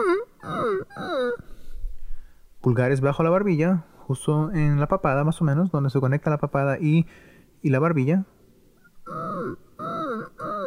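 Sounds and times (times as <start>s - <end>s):
voice imitating a whimpering puppy as a singing exercise: 0.0s - 1.5s, 8.8s - 10.6s
speech: 2.6s - 8.4s.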